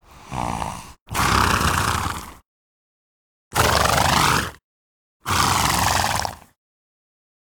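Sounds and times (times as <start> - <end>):
horse snorting: 0.0 - 2.4, 3.5 - 4.6, 5.3 - 6.5.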